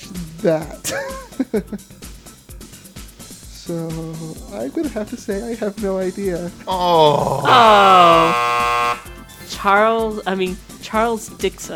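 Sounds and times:
speech: 0.4s - 2.1s, 3.7s - 11.7s
loud electronic car alarm tone: 7.5s - 9.1s.

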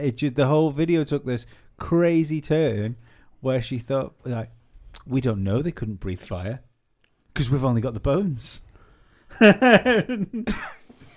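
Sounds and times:
speech: 0.0s - 6.7s, 7.4s - 8.7s, 9.3s - 10.8s
raspy voiced coughing: 10.4s - 11.1s.

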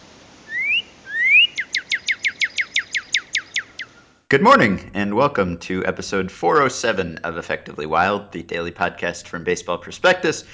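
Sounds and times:
male cardinal singing whistles and downslurred chirps: 0.5s - 4.0s
speech: 4.3s - 10.5s.

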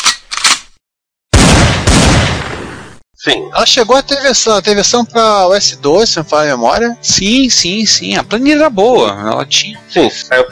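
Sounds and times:
volley of gunshots: 1.3s - 3.0s
speech: 3.2s - 10.4s.

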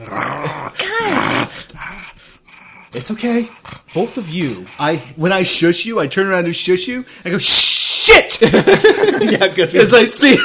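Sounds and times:
creature growling: 0.0s - 5.3s
speech: 3.0s - 10.4s
laughter: 8.4s - 10.4s.

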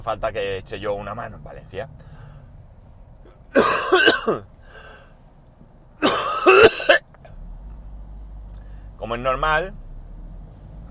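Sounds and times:
speech: 0.0s - 2.1s, 3.5s - 4.6s, 9.0s - 9.8s
coughing and throat clearing: 3.3s - 4.5s, 6.0s - 7.1s.

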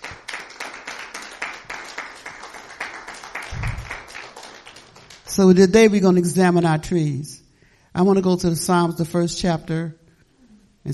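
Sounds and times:
church audience clapping after a prayer: 0.0s - 5.6s
speech: 5.4s - 7.4s, 8.0s - 10.0s.

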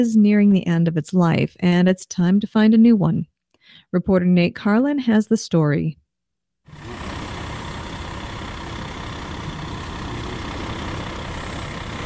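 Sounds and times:
speech: 0.0s - 6.0s
heavy diesel garbage truck engine starting and rumbling at Dane County Landfill: 6.7s - 12.0s.

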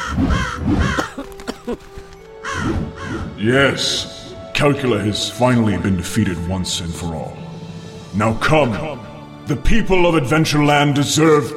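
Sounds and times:
raven cawing: 0.0s - 3.4s
speech: 0.1s - 2.0s, 2.6s - 7.4s, 8.1s - 11.5s.

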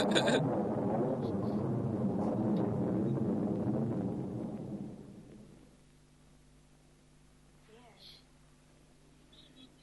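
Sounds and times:
thunder crack and rolling rumble: 0.0s - 5.8s.

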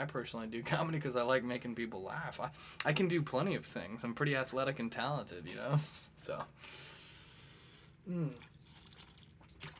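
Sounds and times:
speech: 0.0s - 6.9s, 8.0s - 8.5s
quiet hiss: 0.0s - 8.7s
sipping coconut water: 8.2s - 9.7s.

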